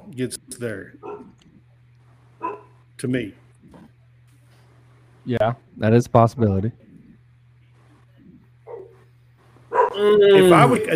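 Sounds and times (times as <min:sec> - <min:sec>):
steady low electrical hum: 0:00.0 - 0:10.9
speech: 0:00.1 - 0:01.5, 0:02.4 - 0:03.4, 0:05.2 - 0:06.8, 0:10.0 - 0:10.9
dog barking: 0:01.0 - 0:01.4, 0:02.4 - 0:02.8, 0:08.7 - 0:09.0, 0:09.7 - 0:10.0.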